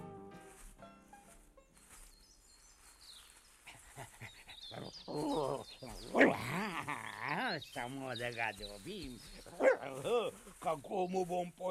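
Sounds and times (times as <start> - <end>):
laughter: 3.7 - 8.1
dog barking in sharp yaps: 6.0 - 6.5, 9.5 - 10.0
speech: 7.8 - 11.7.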